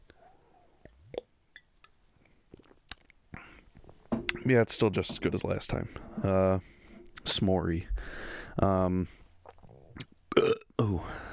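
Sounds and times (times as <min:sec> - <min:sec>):
person sipping a porter beer with slurping and mouth clicks: 0:02.5 - 0:03.2, 0:09.4 - 0:10.2
speech: 0:04.5 - 0:09.2, 0:10.8 - 0:11.2.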